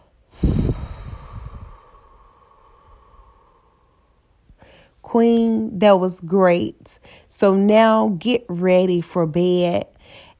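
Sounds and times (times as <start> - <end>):
deep breath let out through an open mouth during a relaxation exercise: 0.3 - 5.0
speech: 5.1 - 10.2.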